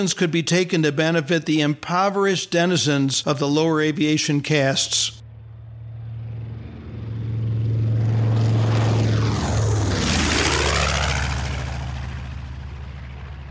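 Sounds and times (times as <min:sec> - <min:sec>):
speech: 0:00.0 - 0:05.2
radial-engined propeller airplane flying overhead: 0:03.2 - 0:13.4.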